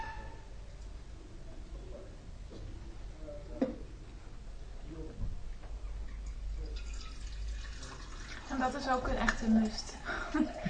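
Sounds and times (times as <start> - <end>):
steady low noise: 0.0 - 10.6
lukewarm water being poured into a bowl of dough mix: 6.2 - 10.6
speech: 8.6 - 10.6.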